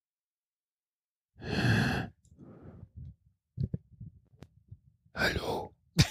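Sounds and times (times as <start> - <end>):
heavy breathing: 1.4 - 3.1
speech: 5.2 - 5.4.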